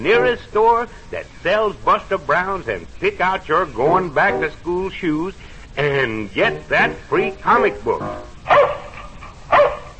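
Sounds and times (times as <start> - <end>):
speech: 0.0 - 8.8
dog barking: 8.5 - 9.9.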